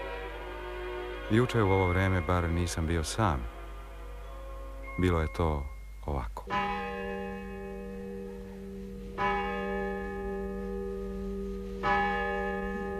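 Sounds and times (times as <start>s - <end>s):
church bells ringing: 0.0s - 12.9s
speech: 1.3s - 3.6s, 5.0s - 6.7s.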